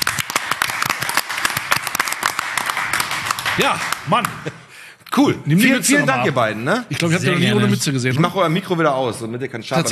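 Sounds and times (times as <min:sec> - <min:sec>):
small group of people clapping in studio: 0:00.0 - 0:04.7
speech: 0:03.6 - 0:09.8.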